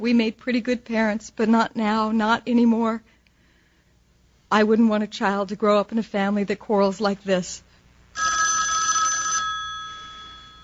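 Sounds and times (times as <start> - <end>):
speech: 0.0 - 3.2, 4.5 - 8.4
telephone bell ringing: 8.2 - 10.6.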